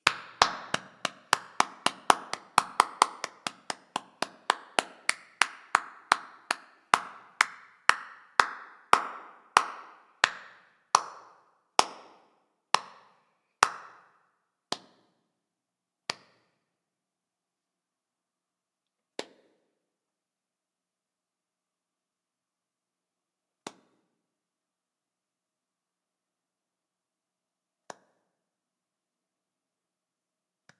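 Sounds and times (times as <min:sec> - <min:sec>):
applause: 0:00.0 - 0:12.0, 0:13.6 - 0:14.0.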